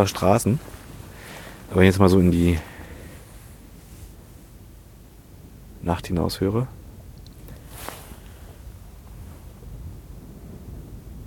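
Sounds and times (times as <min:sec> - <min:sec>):
speech: 0:00.0 - 0:00.8, 0:01.7 - 0:02.7, 0:05.8 - 0:06.8
faint higher rustle: 0:00.0 - 0:04.8, 0:06.7 - 0:10.8
wind blowing outdoors at night against the microphone: 0:00.0 - 0:11.2.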